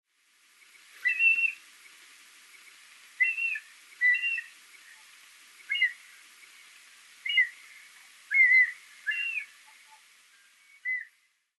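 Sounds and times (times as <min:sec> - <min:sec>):
mountain hawk-eagle whistled calls: 0:01.0 - 0:01.6, 0:03.2 - 0:04.5, 0:05.7 - 0:06.0, 0:07.2 - 0:07.6, 0:08.3 - 0:10.0, 0:10.7 - 0:11.1.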